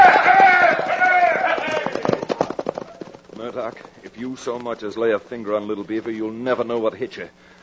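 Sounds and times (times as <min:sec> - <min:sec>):
men shouting whinny-like cries: 0:00.0 - 0:02.2
cayuses ridden by men galloping: 0:00.0 - 0:07.3
speech: 0:03.5 - 0:07.6.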